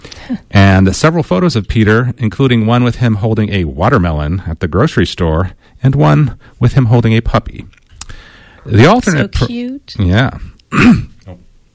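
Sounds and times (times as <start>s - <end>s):
speech: 0.3s - 11.4s
person clearing throat with a gravelly rasp: 9.0s - 9.5s, 10.7s - 11.3s
soft short grunt: 10.7s - 11.4s.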